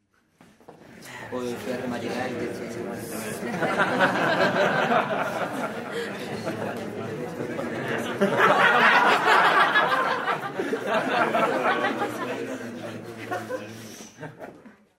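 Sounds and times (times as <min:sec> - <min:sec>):
people laughing in a bar: 0:01.4 - 0:14.9.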